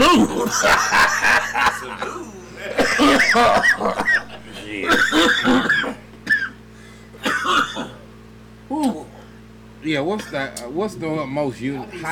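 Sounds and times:
throat clearing: 0.0s - 0.4s, 2.0s - 6.6s, 7.2s - 8.0s, 8.7s - 9.4s
breathy chuckling: 0.0s - 6.0s
harsh coughing after smoking: 0.0s - 8.1s, 8.7s - 9.4s, 10.1s - 10.5s
speech: 0.4s - 4.1s, 9.9s - 12.0s.

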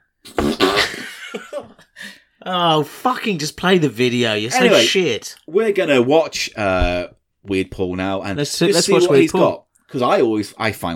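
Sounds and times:
loud buzzy fart: 0.2s - 1.0s
speech: 1.3s - 10.9s.

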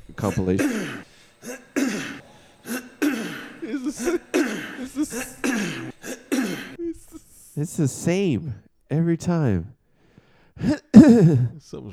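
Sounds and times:
speech: 0.2s - 1.6s, 3.9s - 5.9s, 7.6s - 9.8s, 10.6s - 11.9s
man giving a DIY speech clearing his throat: 0.2s - 6.8s, 10.6s - 11.6s
man giving a DIY speech coughing: 0.2s - 6.8s, 10.6s - 11.6s.

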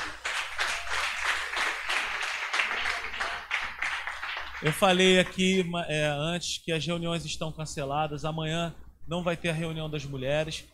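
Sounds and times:
audience applauding: 0.0s - 5.4s
speech: 4.6s - 10.7s.

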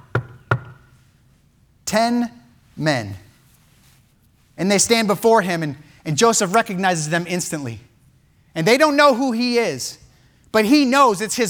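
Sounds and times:
firm knocking on a wooden surface: 0.0s - 0.9s
speech: 1.9s - 3.2s, 4.6s - 7.9s, 8.5s - 11.4s.

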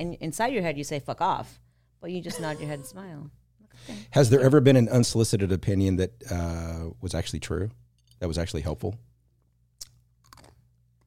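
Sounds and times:
speech: 0.0s - 9.1s
ice being chewed into the microphone: 9.8s - 10.6s.

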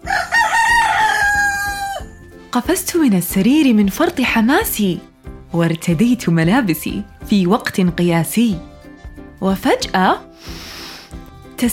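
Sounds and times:
rooster crowing: 0.0s - 2.1s
speech: 2.5s - 8.7s, 9.4s - 10.6s, 11.6s - 11.7s.

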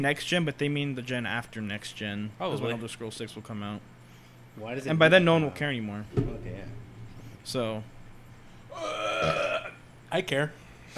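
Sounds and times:
speech: 0.0s - 3.9s, 4.6s - 6.8s, 7.4s - 8.0s, 10.1s - 10.9s
burp: 8.7s - 9.8s.

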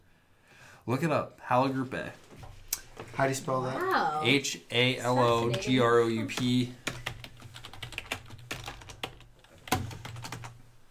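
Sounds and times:
speech: 0.8s - 2.2s, 3.2s - 6.8s
typing on a computer keyboard: 6.4s - 10.6s.

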